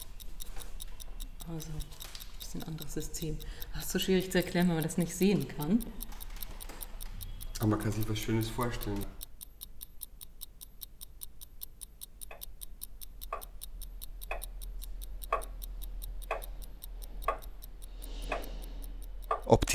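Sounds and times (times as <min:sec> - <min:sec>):
mechanical clock ticking: 0:00.0 - 0:19.7
speech: 0:01.5 - 0:06.0, 0:07.6 - 0:09.2.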